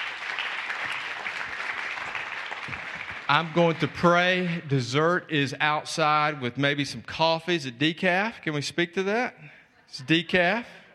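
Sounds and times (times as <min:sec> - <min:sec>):
crowd applauding: 0:00.0 - 0:04.6
speech: 0:03.3 - 0:10.8.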